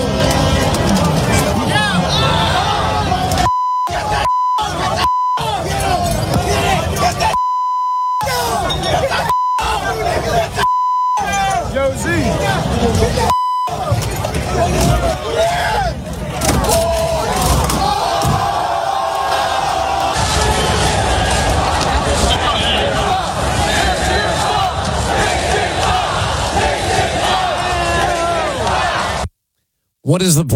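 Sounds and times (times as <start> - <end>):
crowd roaring and yelling during rioting in city streets: 0.0 - 7.4, 8.2 - 29.3
short censor beeps: 3.5 - 5.5, 7.3 - 8.3, 9.3 - 9.7, 10.6 - 11.3, 13.3 - 13.8.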